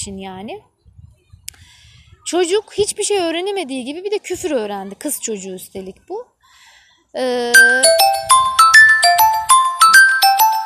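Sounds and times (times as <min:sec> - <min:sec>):
speech: 0:00.0 - 0:00.7, 0:02.3 - 0:06.3, 0:07.1 - 0:08.5
mobile phone ringing with a bright melodic ringtone: 0:07.5 - 0:10.6.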